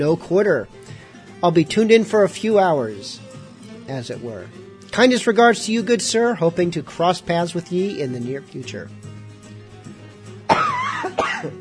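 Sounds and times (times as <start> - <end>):
speech: 0.0 - 3.2, 3.9 - 9.1
harsh coughs: 10.5 - 11.5.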